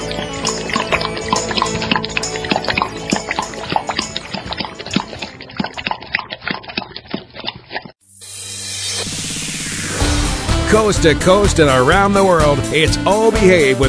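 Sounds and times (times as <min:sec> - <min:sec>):
water pouring and dripping: 0:00.0 - 0:08.0
speech: 0:10.7 - 0:13.8.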